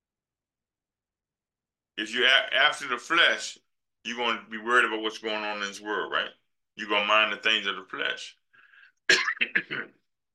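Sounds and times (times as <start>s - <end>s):
speech: 2.0s - 8.4s, 9.1s - 10.0s
loud person coughing: 9.1s - 10.1s
rough throat-clearing bursts: 9.1s - 10.1s.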